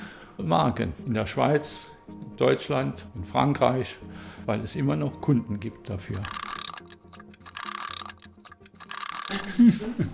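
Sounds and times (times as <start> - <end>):
speech: 0.4 - 6.4, 9.3 - 10.1
soft mechanical ticking: 6.2 - 9.6
watch winding mechanism ratchet clicking during assembly: 6.2 - 9.6
laughter: 9.2 - 10.1.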